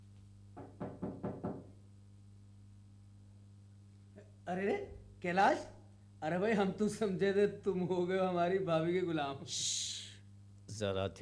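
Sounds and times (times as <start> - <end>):
low steady hum: 0.0 - 11.2
firm knocks on a wooden door: 0.6 - 1.8
speech: 4.5 - 9.9, 10.7 - 11.2.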